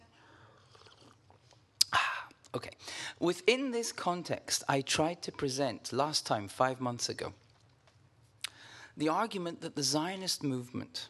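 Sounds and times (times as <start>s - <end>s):
person sipping coffee: 0.3s - 2.6s
speech: 2.5s - 7.4s, 9.0s - 11.0s.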